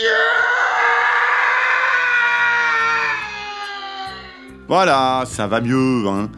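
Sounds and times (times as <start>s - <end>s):
long loud angry scream with a harsh strained tone: 0.0s - 4.7s
speech: 4.7s - 6.3s.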